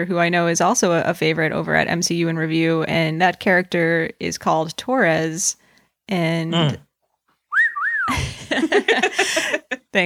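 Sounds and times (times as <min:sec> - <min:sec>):
speech: 0:00.0 - 0:06.9, 0:08.1 - 0:10.0
person whistling a sliding two-note phrase: 0:07.5 - 0:08.2.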